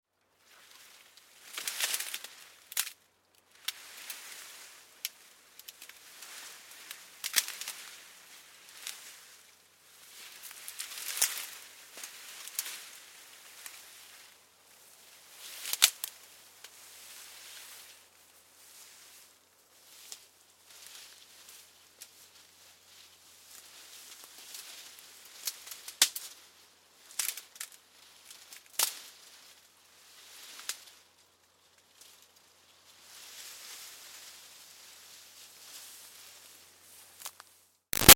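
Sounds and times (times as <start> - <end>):
leaves moving: 0.4 - 38.1
feet snapping twigs: 0.7 - 9.3, 10.2 - 14.4, 15.4 - 16.8, 25.3 - 26.4, 27.1 - 29.0, 37.1 - 38.1.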